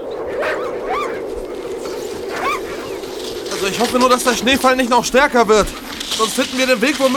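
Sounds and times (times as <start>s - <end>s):
steady windy hiss in falling snow: 0.0s - 7.1s
sled dogs yelping and whining: 0.4s - 3.4s
speech: 3.6s - 7.1s.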